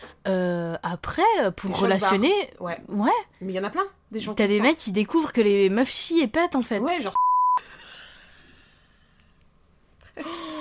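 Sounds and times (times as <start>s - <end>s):
speech: 0.3s - 7.3s
electronic censor bleep: 7.2s - 7.6s.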